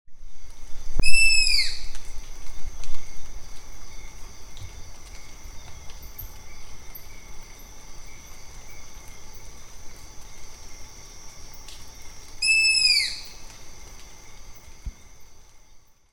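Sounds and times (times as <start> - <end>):
Asio clamator owl: 1.0 - 2.0, 12.4 - 13.4.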